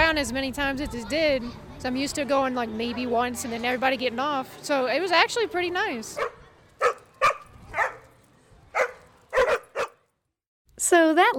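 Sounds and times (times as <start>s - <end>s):
speech: 0.1s - 6.4s, 10.9s - 11.3s
13-year-old dog yappy barking: 6.2s - 8.1s, 8.7s - 10.0s.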